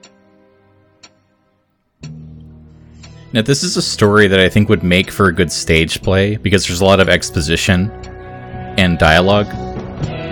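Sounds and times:
clock ticking: 2.0s - 9.3s
speech: 3.3s - 8.2s, 9.0s - 9.6s.

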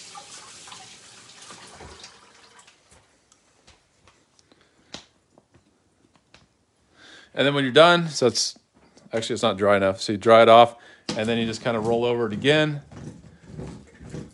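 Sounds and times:
something being rinsed off under running water: 0.0s - 3.0s
speech: 7.4s - 12.9s.

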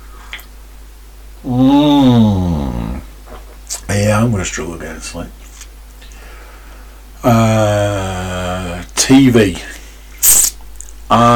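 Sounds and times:
speech: 1.4s - 1.8s, 4.2s - 5.5s, 7.2s - 7.4s, 9.1s - 9.8s, 11.1s - 11.3s
person yawning into the microphone: 1.4s - 3.1s, 7.2s - 8.8s.

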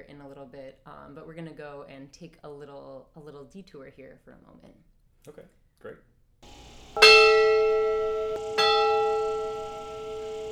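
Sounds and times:
speech: 0.2s - 6.1s
large outdoor camp bell on dining hall roof ringing: 6.5s - 10.5s.

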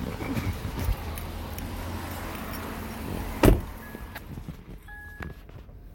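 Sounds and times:
low car interior rumble: 0.0s - 5.9s
car door shutting: 3.3s - 5.4s
car warning beep for key fob left vehicle: 3.8s - 4.2s, 4.9s - 5.9s.

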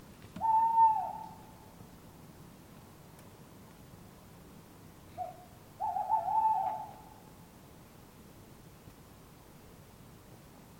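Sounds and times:
two tawny owls calling in an urban setting in Surrey England: 0.4s - 1.7s, 5.1s - 7.3s.

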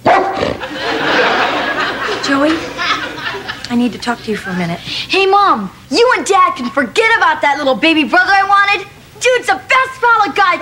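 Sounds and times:
dog barking: 0.0s - 0.6s
laughter: 0.4s - 4.8s
speech: 2.3s - 2.8s, 3.7s - 10.6s.

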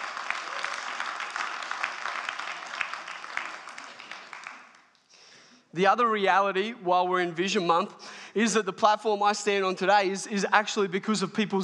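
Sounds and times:
audience crowd applauding: 0.0s - 5.0s
speech: 5.8s - 11.6s.

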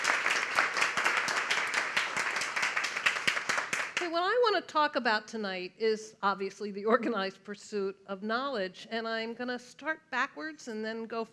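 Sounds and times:
crowd applauding: 0.0s - 4.0s
speech: 4.0s - 11.3s.

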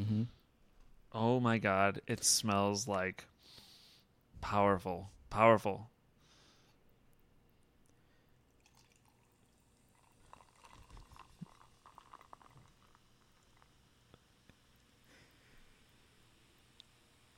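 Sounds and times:
speech: 1.1s - 3.3s, 4.4s - 5.9s
carbonated drink fizzing after being poured: 8.5s - 15.0s.

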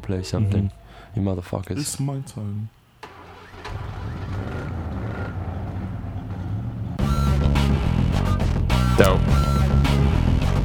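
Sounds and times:
speech: 0.1s - 2.8s, 9.0s - 9.7s
car engine starting up: 2.4s - 10.3s
music track: 7.0s - 10.6s.

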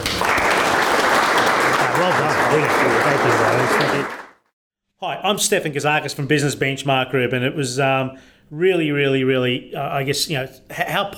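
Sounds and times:
audience applause: 0.0s - 4.4s
speech: 2.1s - 4.2s, 5.0s - 11.1s.

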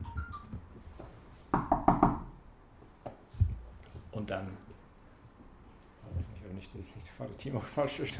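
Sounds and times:
knocking on a door: 1.5s - 2.4s
speech: 4.2s - 4.7s, 6.5s - 8.1s.

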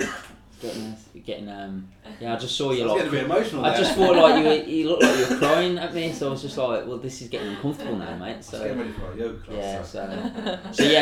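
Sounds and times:
person coughing: 0.0s - 0.4s, 5.0s - 5.7s, 10.8s - 11.0s
rough throat clearing: 0.0s - 0.4s
speech: 0.0s - 11.0s
laughter: 3.0s - 6.4s, 7.3s - 11.0s.

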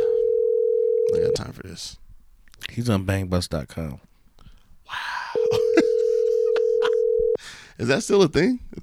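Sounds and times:
electronic ringback tone from an outgoing phone call: 0.0s - 1.4s, 5.4s - 7.4s
speech: 1.4s - 2.0s, 2.6s - 4.1s, 7.8s - 8.8s
laughter: 5.4s - 7.2s.

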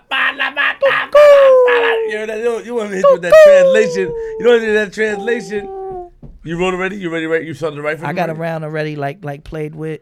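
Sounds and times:
laughter: 0.0s - 2.4s, 3.1s - 6.1s
speech: 2.2s - 5.8s, 6.4s - 10.0s
rooster crowing sound effect: 3.1s - 6.1s.

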